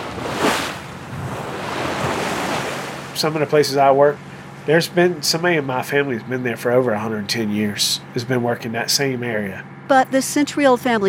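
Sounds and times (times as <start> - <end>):
open-sea waves washing around a shrimp boat at night: 0.0 - 8.5
speech: 3.2 - 11.0.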